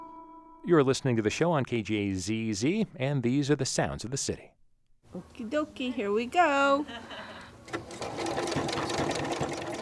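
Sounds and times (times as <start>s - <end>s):
speech: 0.7s - 4.6s, 5.1s - 7.8s
beginner's sewing machine stitching in a rapid mechanical chatter: 7.7s - 9.8s.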